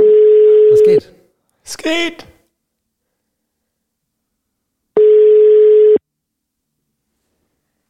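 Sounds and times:
telephone call tone while dialing: 0.0 - 1.0, 5.0 - 6.0
speech: 0.9 - 1.2, 1.8 - 2.3.

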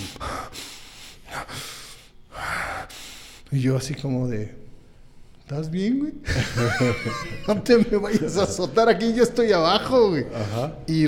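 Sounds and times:
voice imitating heavy, labored breathing: 0.0 - 3.4
speech: 3.5 - 4.6, 5.5 - 11.0
laughter: 6.2 - 9.2.

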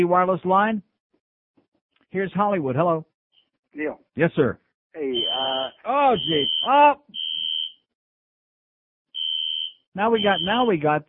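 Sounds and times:
speech: 0.0 - 0.9, 2.1 - 3.1, 3.7 - 7.2, 10.0 - 11.0
building fire alarm blaring: 5.0 - 7.8, 9.2 - 10.8.

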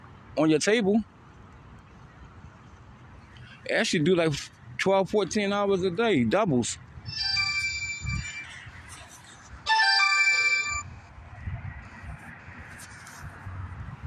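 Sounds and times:
speech: 0.4 - 1.1, 3.7 - 7.4
phone ringing with a bright melodic electronic ringtone: 7.1 - 11.0.

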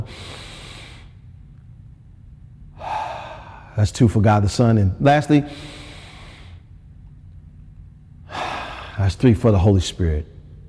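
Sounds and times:
deep breath: 0.0 - 1.2, 2.8 - 3.8, 5.5 - 6.7, 8.3 - 9.0
speech: 3.8 - 5.8, 9.1 - 10.4.

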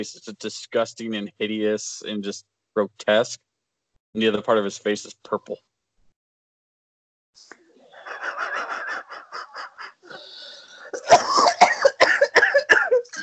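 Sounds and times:
speech: 0.0 - 3.5, 4.1 - 5.7
laughter: 7.9 - 13.2
wheezy breath: 9.4 - 11.0
person coughing while getting over the flu: 10.1 - 13.2.

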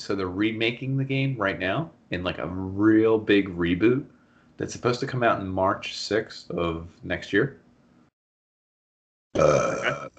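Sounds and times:
speech: 0.0 - 7.6, 9.4 - 10.1
low voiced burp: 9.4 - 10.1.

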